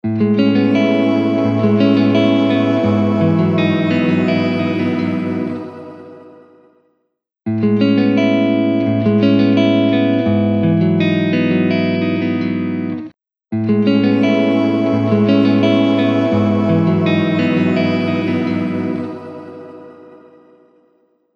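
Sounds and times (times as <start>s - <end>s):
electric guitar playing: 0.0s - 6.6s, 7.5s - 20.6s.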